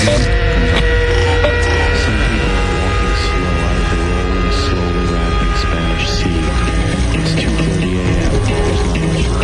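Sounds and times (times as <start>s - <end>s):
refrigerator light electrical hum: 0.0s - 9.4s.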